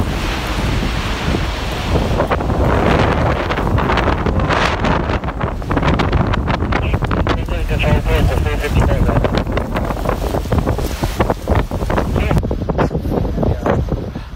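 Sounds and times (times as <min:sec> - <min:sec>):
strong wind buffeting the microphone during a fire's ember attack on the Sunshine Coast: 0:00.0 - 0:14.3
indistinct radio chatter from firefighters' walkie-talkies: 0:06.6 - 0:10.0, 0:12.0 - 0:12.4.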